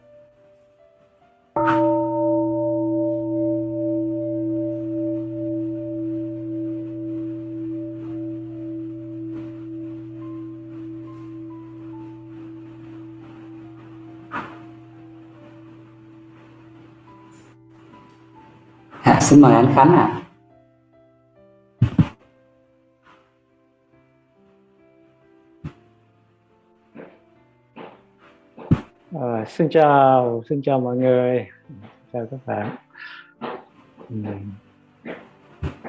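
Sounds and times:
deep mindfulness bell struck and ringing out: 1.6 - 20.2
speech: 19.2 - 20.2, 29.6 - 32.8, 34.1 - 34.6.

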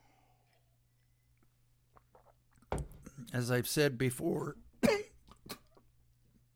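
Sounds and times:
sipping grape juice with soft wet slurps: 0.2 - 3.2, 5.2 - 6.5
swallow of grape juice: 0.4 - 3.2, 5.2 - 6.0
speech: 3.2 - 4.6.

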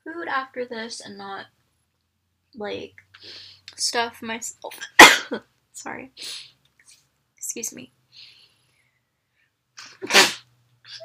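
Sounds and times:
speech: 0.3 - 1.6, 2.6 - 6.5, 7.5 - 8.3
loud explosive sneeze: 4.8 - 5.4, 9.8 - 11.0
short breathy cough: 5.0 - 5.4.

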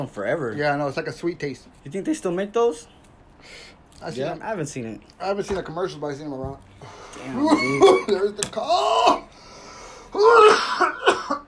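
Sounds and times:
speech: 0.0 - 9.2, 10.2 - 11.4
coughing: 7.3 - 9.3, 10.1 - 11.4.

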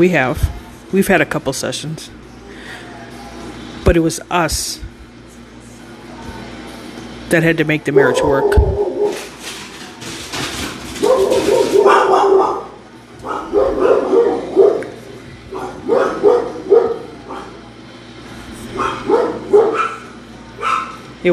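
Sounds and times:
speech: 0.0 - 2.2, 3.8 - 4.9, 7.3 - 8.9
low hum: 0.0 - 21.3
several household dogs barking and yipping: 7.9 - 9.3, 11.0 - 17.7, 18.7 - 21.1.

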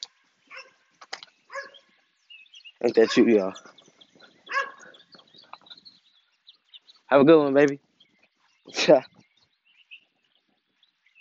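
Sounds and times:
dog barking and yelping: 0.5 - 0.8, 1.5 - 1.9, 3.0 - 3.7, 4.4 - 5.0
speech: 2.8 - 3.7, 7.1 - 7.9, 8.7 - 9.1.

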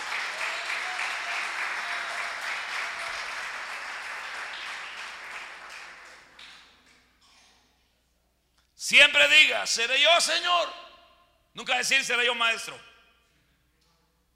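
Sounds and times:
audience applauding: 0.0 - 7.0
speech: 8.9 - 10.8, 11.6 - 12.9.

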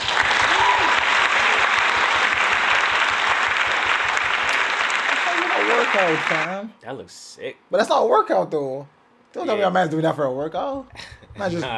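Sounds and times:
group applauding: 0.0 - 6.6
speech: 5.9 - 11.7.

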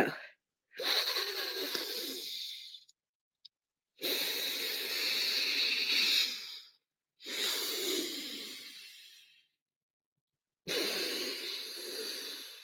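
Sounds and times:
alternate nostril breathing inhaling and exhaling: 0.8 - 3.0, 4.0 - 9.6, 10.7 - 12.6.

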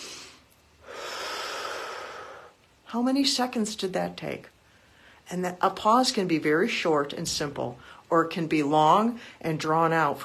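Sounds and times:
deep breath: 0.0 - 2.6
speech: 2.9 - 4.6, 5.3 - 10.2.

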